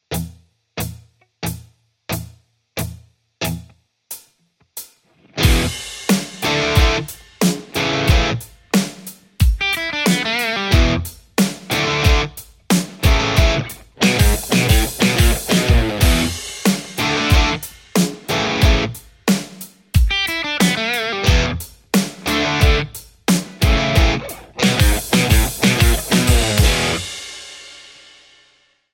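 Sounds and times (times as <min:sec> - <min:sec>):
Stratocaster electric guitar: 0:05.1 - 0:08.5, 0:09.6 - 0:12.4, 0:13.0 - 0:19.0, 0:20.1 - 0:27.1.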